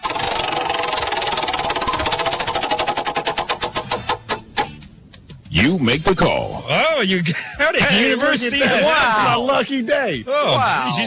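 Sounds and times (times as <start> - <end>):
prize wheel spun hard, ratcheting clicks: 0.0 - 5.4
speech: 5.5 - 11.0.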